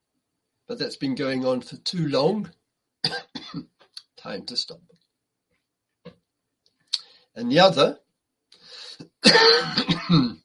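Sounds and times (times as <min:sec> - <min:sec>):
speech: 0:00.7 - 0:05.0, 0:07.4 - 0:08.0, 0:08.7 - 0:10.4
itchy cough: 0:03.0 - 0:03.7, 0:09.2 - 0:10.4.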